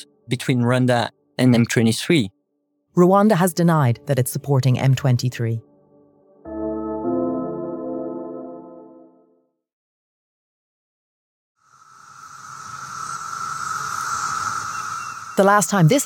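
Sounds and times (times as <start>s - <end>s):
sustained musical tone: 0.0s - 2.3s, 5.6s - 9.4s
speech: 0.0s - 2.4s, 3.0s - 5.7s, 15.4s - 16.0s
chorus of cicadas buzzing: 11.6s - 15.9s.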